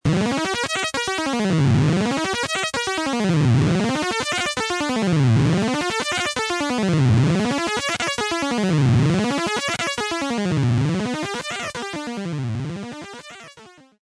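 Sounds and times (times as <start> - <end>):
arpeggio: 0.1 - 13.5.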